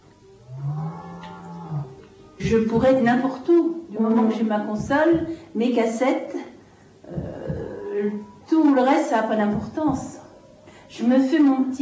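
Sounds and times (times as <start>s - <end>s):
cow mooing: 0.4s - 2.0s
speech: 2.4s - 6.4s, 8.0s - 10.2s, 10.9s - 11.8s.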